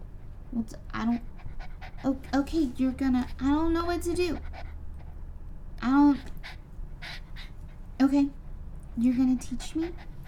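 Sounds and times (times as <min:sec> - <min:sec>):
male puppy panting: 0:00.0 - 0:10.2
speech: 0:00.5 - 0:01.4, 0:02.0 - 0:04.7, 0:05.8 - 0:06.4, 0:08.1 - 0:08.4, 0:09.0 - 0:10.1.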